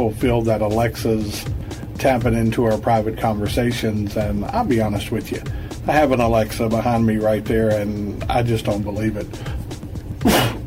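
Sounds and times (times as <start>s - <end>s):
speech: 0.0s - 9.6s, 10.2s - 10.6s
low hum: 0.0s - 10.6s
man sneezing: 10.2s - 10.6s.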